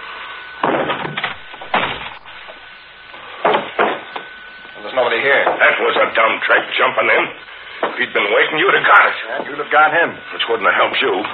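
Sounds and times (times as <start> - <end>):
wooden door being kicked open: 0.6 - 2.2
speech: 5.2 - 11.3.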